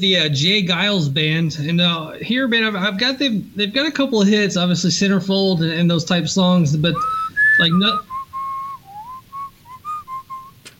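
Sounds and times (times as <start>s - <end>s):
speech: 0.0s - 8.1s
person whistling a song melody: 7.0s - 10.6s.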